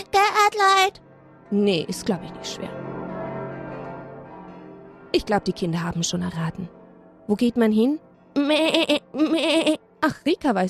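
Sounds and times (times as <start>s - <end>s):
speech: 0.0s - 2.9s, 5.1s - 10.6s
church bells ringing in a peal: 1.0s - 8.4s.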